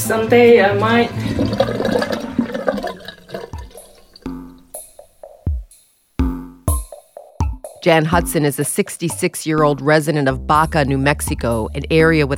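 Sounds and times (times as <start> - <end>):
speech: 0.1 - 1.9, 7.8 - 12.3
toilet flushing: 0.2 - 4.2
hollow gurgles and plunking drips: 1.2 - 4.7.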